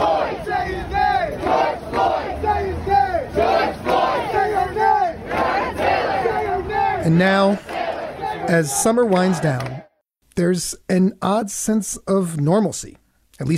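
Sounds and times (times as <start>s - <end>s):
protest crowd shouting on a New York street in summer: 0.0s - 9.9s
speech: 7.0s - 7.8s, 8.5s - 9.8s, 10.4s - 13.5s.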